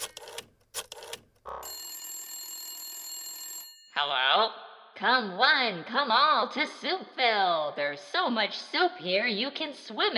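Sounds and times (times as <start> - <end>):
phone ringing: 1.0 - 4.0
speech: 4.0 - 10.1.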